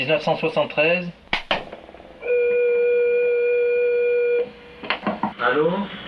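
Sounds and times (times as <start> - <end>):
speech: 0.0 - 1.2, 5.4 - 6.0
miniature electric organ note played by someone practicing: 2.2 - 4.5.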